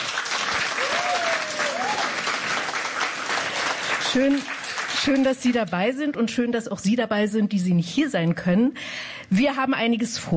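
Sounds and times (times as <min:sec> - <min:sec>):
studio audience applauding: 0:00.0 - 0:05.9
whistle or cheer: 0:00.8 - 0:02.1
speech: 0:04.1 - 0:10.3.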